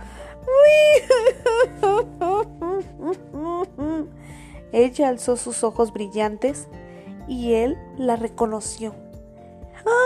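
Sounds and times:
young woman crying in sobbing wails: 0.1 - 4.6
speech: 4.8 - 9.0.

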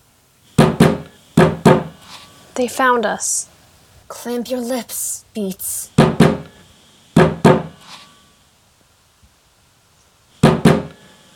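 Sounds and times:
sharp knocks on a door: 0.6 - 1.9, 6.0 - 6.5, 7.2 - 7.7, 10.4 - 10.9
speech: 2.6 - 3.5, 4.1 - 6.0.

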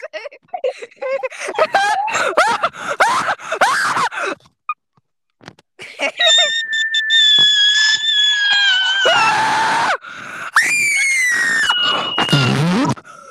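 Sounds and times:
laughter: 0.0 - 3.4, 5.8 - 6.8
loud screaming: 6.2 - 12.8.

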